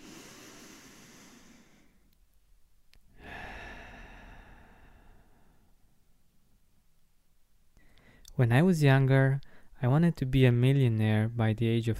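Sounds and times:
slow deep breathing in through the nose and out through the mouth: 0.0 - 2.2, 3.1 - 6.1, 7.8 - 8.3, 9.4 - 9.7
speech: 8.4 - 11.9.

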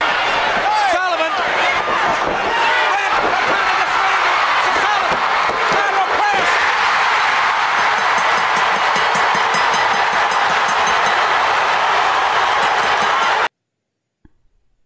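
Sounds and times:
large wrestling arena crowd roaring and cheering: 0.0 - 13.5.

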